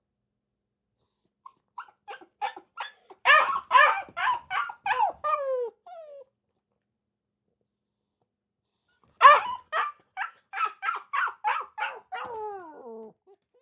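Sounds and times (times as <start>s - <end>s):
Akita puppy barking in a kennel cage: 1.2s - 6.3s, 8.8s - 13.0s.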